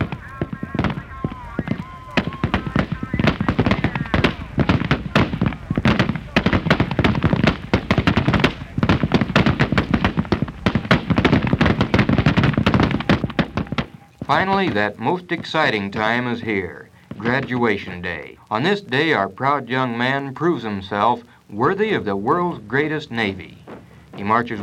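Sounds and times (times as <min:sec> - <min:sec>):
rifle gunfire volleys at a Navy firing range: 0:00.0 - 0:16.2
speech: 0:14.3 - 0:23.6, 0:24.2 - 0:24.6.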